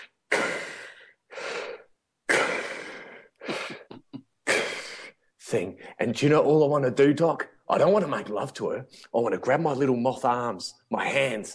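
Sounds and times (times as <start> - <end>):
voice imitating heavy breathing mixed with snoring: 0.0 - 5.1
speech: 5.5 - 11.5.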